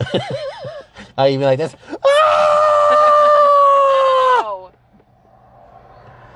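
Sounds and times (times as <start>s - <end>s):
laughter: 0.0s - 1.0s
speech: 0.1s - 0.4s, 1.2s - 1.9s
high-pitched scream into a microphone: 2.0s - 4.7s.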